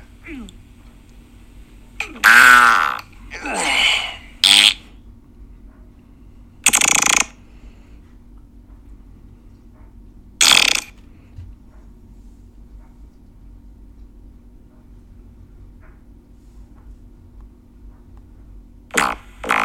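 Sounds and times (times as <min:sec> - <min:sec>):
comic fart sound effects: 0:02.0 - 0:03.1, 0:04.4 - 0:04.9, 0:06.6 - 0:07.4, 0:10.4 - 0:10.9, 0:18.9 - 0:19.6.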